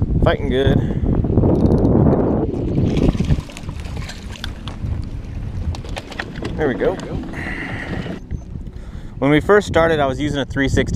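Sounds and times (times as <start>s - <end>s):
wind gusting over open water during boat fishing: 0.0s - 10.9s
speech: 0.2s - 1.8s, 6.6s - 7.5s, 9.2s - 10.9s.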